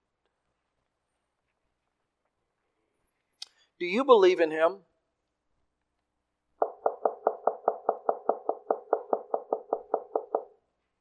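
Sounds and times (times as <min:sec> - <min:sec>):
speech: 0:03.8 - 0:04.9
knocking on a door: 0:06.6 - 0:10.6.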